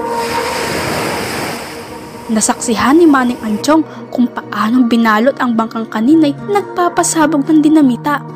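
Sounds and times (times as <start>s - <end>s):
ocean waves crashing: 0.0s - 3.8s
strong wind roaring: 0.0s - 3.8s
speech: 2.3s - 8.3s.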